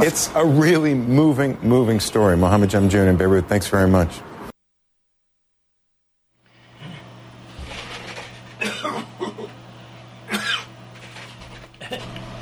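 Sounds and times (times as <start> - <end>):
speech: 0.0 - 4.3
person coughing and heaving: 8.6 - 9.5, 10.2 - 10.7, 11.8 - 12.1.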